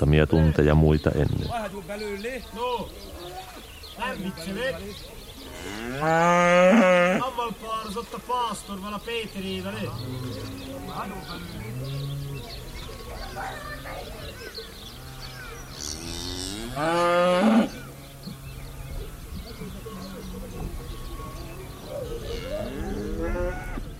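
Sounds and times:
speech: 0.1 - 3.2, 4.0 - 12.1, 16.8 - 17.8
soft murmur: 0.2 - 23.9
herd of cattle mooing returning from pasture along a village road: 5.5 - 7.2, 9.6 - 14.2, 14.9 - 19.2, 21.1 - 23.9
loud drawn-out cow moo: 5.5 - 7.2, 9.8 - 12.5, 15.0 - 18.0, 22.0 - 23.9.

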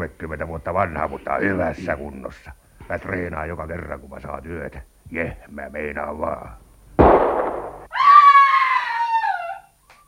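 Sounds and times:
speech: 0.0 - 6.6
loud gunshot: 7.0 - 7.9
high sustained scream: 7.9 - 9.8.

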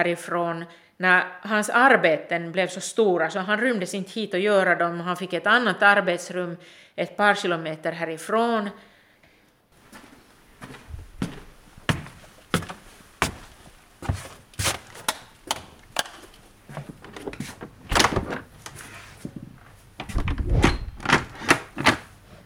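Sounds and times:
speech: 0.0 - 8.9
door being opened: 14.9 - 18.5, 20.0 - 22.1.

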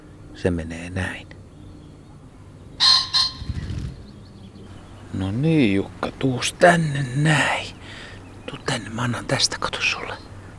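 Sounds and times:
low hum: 0.0 - 10.5
speech: 0.4 - 1.4, 5.2 - 7.7, 8.7 - 10.3
recorded rooster crowing: 2.8 - 3.5.

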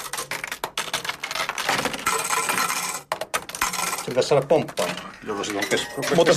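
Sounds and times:
coins clattering into a coin pusher machine: 1.7 - 6.3
speech: 4.1 - 6.3.

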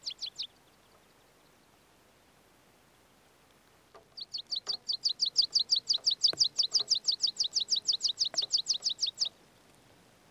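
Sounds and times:
meadow pipit singing: 0.0 - 1.0, 3.9 - 9.4
faint clicks: 3.4 - 10.2.

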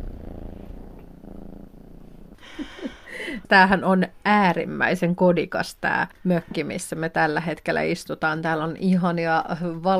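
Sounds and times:
soft rustle: 0.0 - 2.4
small black cat purring in a cottage: 0.0 - 3.2
speech: 2.5 - 9.9.

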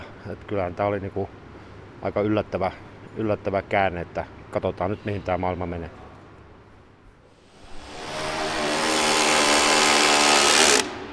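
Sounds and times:
speech: 0.3 - 1.4, 2.0 - 6.0
power tool driving a screw at a prefab house factory: 7.7 - 11.1.

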